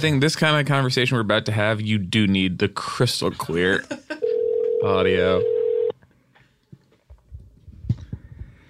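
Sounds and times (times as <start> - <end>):
speech: 0.0 - 4.2, 4.8 - 5.6
short electronic tone of a phone dialing out: 4.2 - 5.9.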